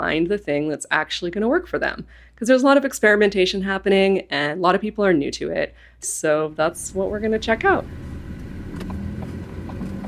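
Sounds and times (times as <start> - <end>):
speech: 0.0 - 8.1
car engine and road drone heard from inside the cabin: 6.6 - 10.0.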